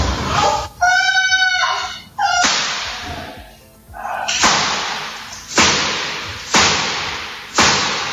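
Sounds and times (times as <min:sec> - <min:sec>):
high-pitched cry: 0:00.3 - 0:04.4
gunshots in Mexico: 0:02.3 - 0:03.4, 0:04.3 - 0:08.1.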